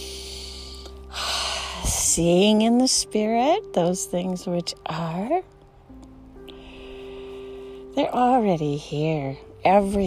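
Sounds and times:
deep airy breath during breathing exercise: 0.0s - 1.9s, 6.5s - 7.9s
steady low humming drone: 0.0s - 10.0s
speech: 2.2s - 5.6s, 8.0s - 10.0s.

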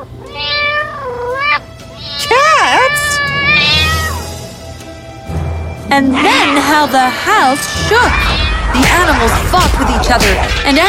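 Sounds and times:
cat yowling and meowing: 0.0s - 4.4s, 6.1s - 10.0s
speech: 5.9s - 10.8s.

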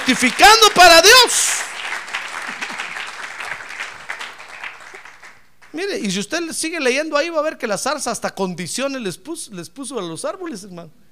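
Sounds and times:
audience clapping steadily in a reverberant room: 0.0s - 5.8s
speech: 0.1s - 1.7s, 5.8s - 11.0s.

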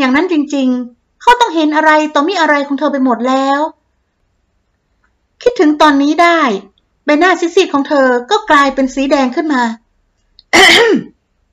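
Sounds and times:
speech: 0.0s - 3.8s, 5.4s - 9.8s, 10.5s - 11.1s
man clearing his throat loudly at the front of a room: 10.6s - 11.2s.

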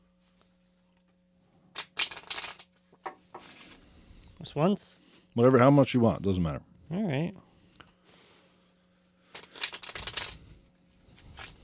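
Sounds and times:
riffle shuffle of a deck of playing cards: 1.7s - 3.9s, 9.2s - 11.6s
speech: 4.5s - 7.5s.

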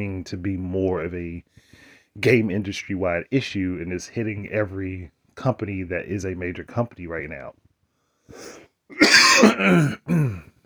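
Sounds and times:
speech: 0.0s - 7.6s, 8.3s - 10.6s
throat clearing from a dry throat: 8.4s - 10.5s.

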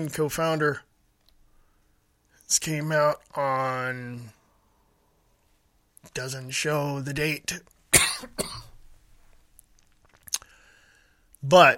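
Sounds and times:
speech: 0.0s - 0.9s, 2.5s - 4.4s, 6.0s - 8.5s, 11.4s - 11.7s
dry cough: 7.9s - 8.8s.

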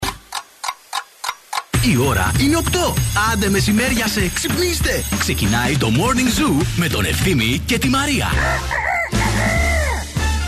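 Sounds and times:
speech: 1.8s - 8.8s
rooster crowing: 8.4s - 10.2s.

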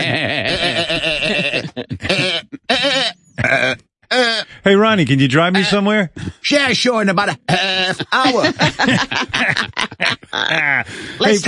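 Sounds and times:
laughter: 0.0s - 2.7s, 7.3s - 11.4s
man imitating a goat bleating: 0.0s - 4.5s, 7.4s - 8.3s
speech: 4.7s - 11.4s.

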